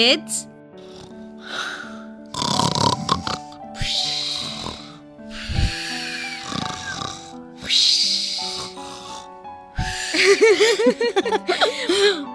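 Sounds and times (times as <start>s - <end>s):
speech: 0.0s - 0.5s, 10.4s - 12.3s
person imitating snoring with rasping inhale-and-snort sounds: 0.8s - 10.4s
laughter: 10.1s - 12.2s.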